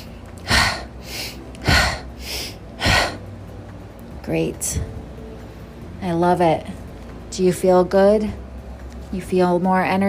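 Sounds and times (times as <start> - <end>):
deep forceful breathing during energizing breathwork exercise: 0.0 - 3.2
speech: 4.3 - 5.0, 6.0 - 8.4, 9.1 - 10.0.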